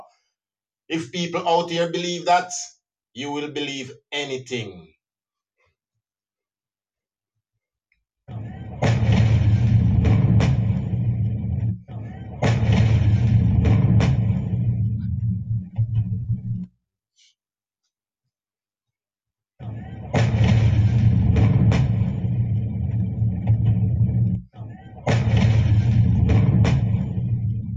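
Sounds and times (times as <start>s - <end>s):
speech: 0.9s - 4.9s
explosion blasts from played video footage: 8.6s - 15.1s, 19.9s - 24.2s, 25.1s - 27.6s.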